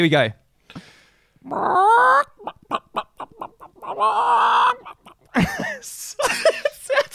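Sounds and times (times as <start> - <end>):
speech: 0.0 - 2.9, 3.9 - 7.0
man imitating a chicken with exaggerated clucks and squawks: 1.5 - 5.4
laughter: 2.4 - 7.1.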